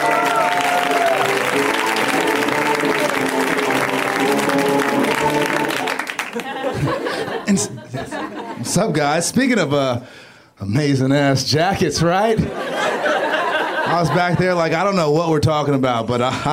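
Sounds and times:
crowd applauding: 0:00.0 - 0:07.4
laughter: 0:05.1 - 0:09.0, 0:12.4 - 0:15.0
speech: 0:07.6 - 0:12.6, 0:13.9 - 0:16.5.

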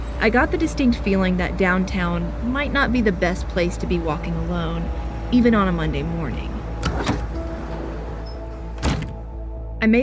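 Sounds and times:
speech: 0:00.2 - 0:07.2, 0:09.8 - 0:10.0
automatic glass door sliding open into a federal courthouse lobby: 0:06.7 - 0:09.2.

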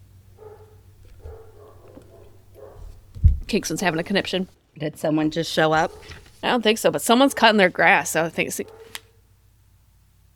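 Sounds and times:
steady low hum: 0:00.0 - 0:10.3
dog barking: 0:00.4 - 0:03.0, 0:05.8 - 0:06.1, 0:08.6 - 0:09.0
speech: 0:03.5 - 0:09.0.

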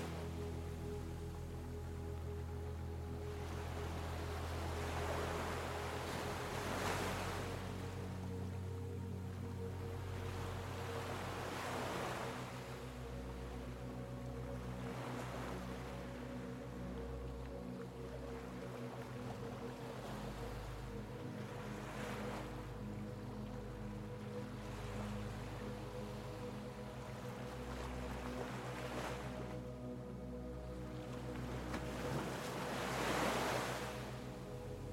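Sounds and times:
ocean waves: 0:00.0 - 0:34.9
soft sustained relaxing melody: 0:00.0 - 0:34.9.

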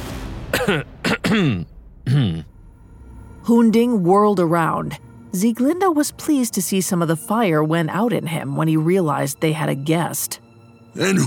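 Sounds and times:
man clearing his throat: 0:00.5 - 0:02.5
speech: 0:00.7 - 0:02.5, 0:03.4 - 0:11.2.

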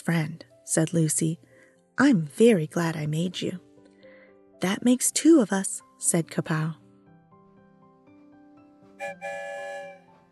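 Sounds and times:
speech: 0:00.1 - 0:03.6, 0:04.6 - 0:06.8, 0:09.0 - 0:09.6
train whistle blowing: 0:09.0 - 0:10.1.

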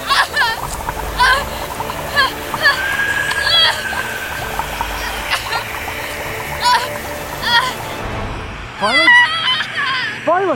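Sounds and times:
water overflowing onto a tiled floor: 0:00.0 - 0:08.2
black water boiling violently in a bathtub: 0:00.0 - 0:10.4.

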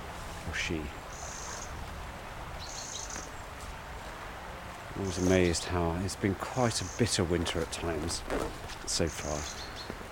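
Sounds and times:
outdoor hiss: 0:00.0 - 0:10.0
speech: 0:00.6 - 0:01.0, 0:05.0 - 0:10.0
wren rattling alarm call among ivy-covered willows in winter: 0:01.1 - 0:01.8, 0:02.6 - 0:03.5, 0:05.0 - 0:05.7, 0:06.7 - 0:07.8.

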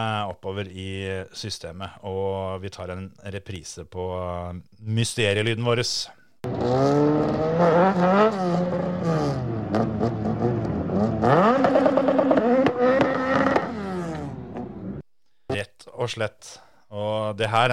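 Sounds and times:
speech: 0:00.0 - 0:10.2, 0:16.0 - 0:17.7
Porsche engine revving while warming up tires: 0:06.4 - 0:15.0
tire squeals: 0:06.5 - 0:15.0.

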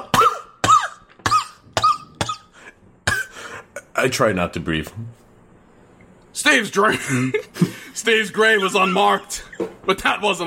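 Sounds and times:
person coughing harshly: 0:00.0 - 0:03.9
speech: 0:04.0 - 0:05.2, 0:06.4 - 0:10.4.

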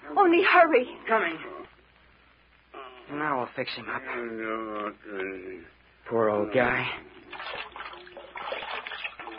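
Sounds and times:
speech: 0:00.1 - 0:01.5, 0:03.1 - 0:07.2
cold water splashing for bathing a head: 0:07.2 - 0:09.3.

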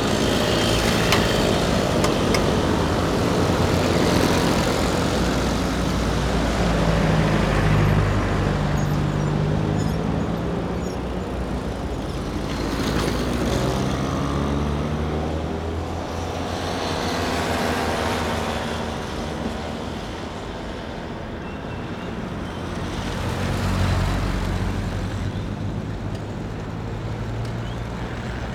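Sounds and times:
low rumble of traffic: 0:00.0 - 0:28.5
scooters buzzing along a street: 0:00.0 - 0:28.5.

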